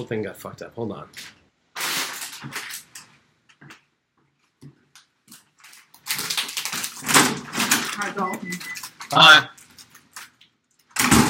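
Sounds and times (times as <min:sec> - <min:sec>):
speech: 0:00.0 - 0:01.4, 0:02.4 - 0:02.6, 0:09.1 - 0:09.6
bubble wrap popping: 0:01.7 - 0:03.1, 0:05.0 - 0:11.2.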